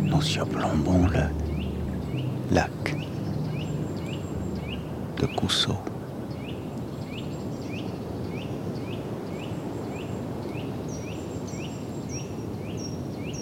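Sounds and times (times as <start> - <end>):
steady wind rushing across a vast marsh under a grey sky: 0.0 - 9.7
bird repeating a short rising chirp: 0.0 - 13.4
speech: 0.1 - 1.5, 2.2 - 3.1, 5.2 - 5.9.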